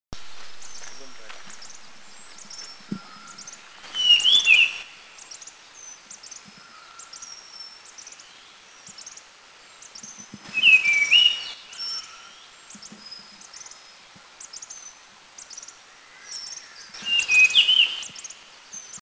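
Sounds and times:
Blue-fronted Robin singing in Eaglenest India: 0.4s - 19.0s.

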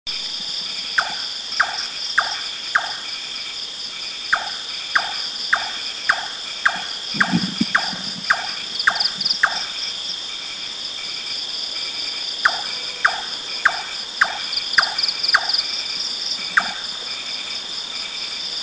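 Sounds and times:
Large-tailed Nightjar calling in south Thailand: 1.0s - 3.1s, 4.3s - 9.9s, 12.4s - 15.8s, 16.4s - 16.9s.

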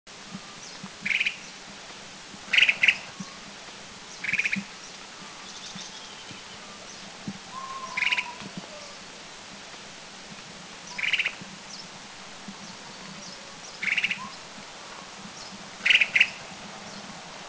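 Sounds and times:
Crested Finchbill calling: 0.6s - 1.6s, 2.5s - 3.4s, 4.1s - 4.7s, 5.4s - 9.0s, 10.9s - 11.8s, 12.6s - 14.4s, 15.4s - 16.4s.

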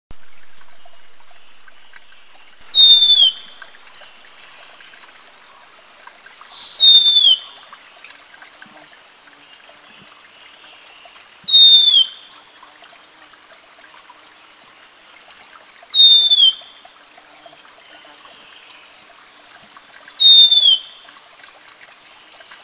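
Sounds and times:
Long-billed Wren Babbler calling in Eaglenest India: 0.4s - 5.1s, 6.5s - 7.6s, 11.4s - 12.2s, 16.0s - 16.7s, 19.6s - 21.0s.

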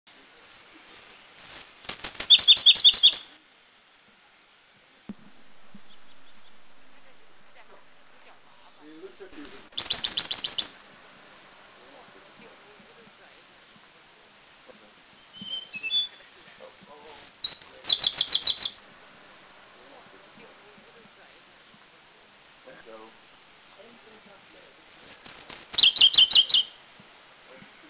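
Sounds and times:
Indian blue robin in Dirang India: 0.4s - 3.4s, 5.1s - 13.4s, 14.3s - 18.8s, 23.8s - 26.8s.

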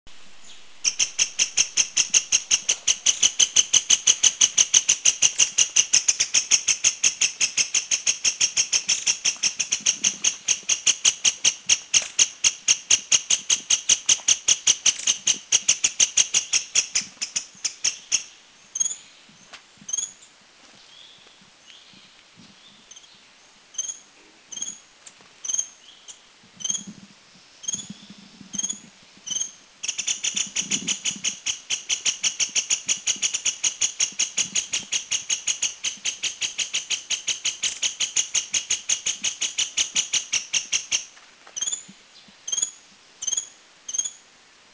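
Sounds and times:
Dark-backed Sibia calls in Doi Lang Thailand: 0.2s - 27.0s, 27.6s - 44.2s.

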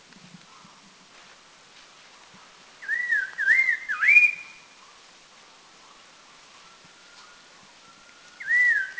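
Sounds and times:
Red-faced Liocichla whistling at Doi Lang in northern Thailand: 2.8s - 4.6s, 7.2s - 8.9s.

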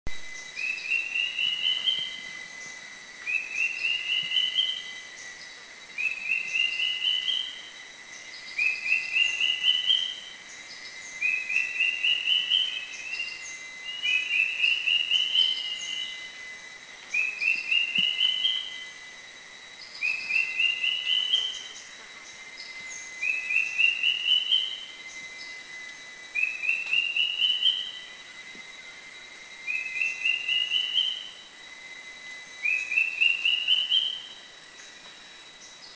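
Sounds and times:
drongo cuckoo: 0.6s - 7.6s, 8.2s - 16.3s, 17.1s - 19.0s, 19.8s - 25.6s, 26.4s - 28.2s, 29.6s - 31.3s, 32.6s - 34.9s.

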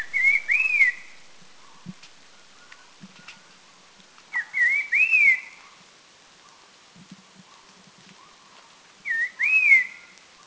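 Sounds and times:
Red-faced liocichla whistling at Doi Lang in northern Thailand: 0.0s - 1.2s, 4.3s - 5.6s, 9.0s - 10.1s.

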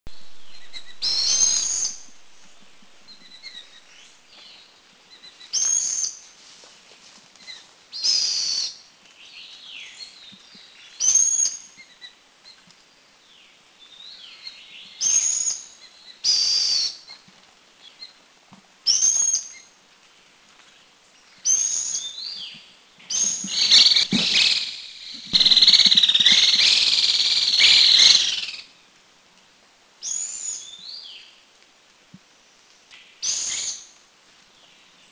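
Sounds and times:
Rufous-crowned Laughingthrush Garrulax ruficeps in Taiwan: 0.3s - 4.1s, 23.2s - 28.7s.

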